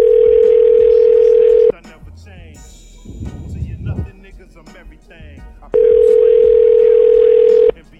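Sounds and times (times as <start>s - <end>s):
outgoing phone call ringback tone: 0.0s - 1.7s, 5.8s - 7.7s.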